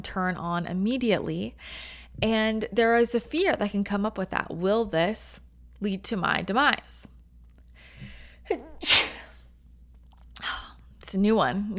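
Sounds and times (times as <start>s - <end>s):
speech: 0.0s - 7.1s, 8.5s - 9.1s, 11.1s - 11.7s
sneeze: 8.5s - 9.4s.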